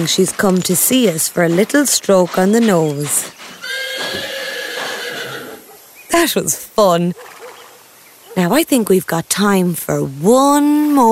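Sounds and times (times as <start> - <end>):
speech: 0.0 - 3.4, 6.1 - 7.4, 8.4 - 11.1
female horse neighing: 3.6 - 5.7.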